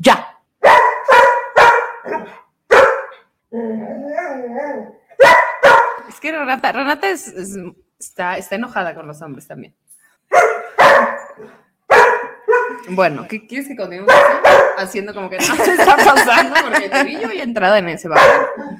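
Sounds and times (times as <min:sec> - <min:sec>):
small dog barking: 0:00.6 - 0:03.2, 0:05.2 - 0:06.0, 0:10.3 - 0:12.8, 0:14.1 - 0:14.8, 0:18.2 - 0:18.7
speech: 0:06.1 - 0:10.5, 0:11.4 - 0:11.6, 0:12.8 - 0:18.7
laughter: 0:15.4 - 0:17.6.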